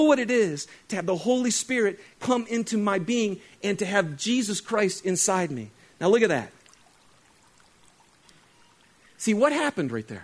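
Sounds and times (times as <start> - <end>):
speech: 0.0 - 6.6, 9.2 - 10.2
white cloth dipped into dyed water sloshing and trickling: 6.5 - 9.2.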